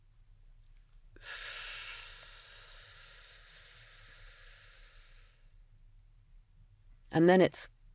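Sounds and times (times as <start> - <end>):
slow inhale through the nose: 1.2 - 5.6
speech: 7.1 - 7.8.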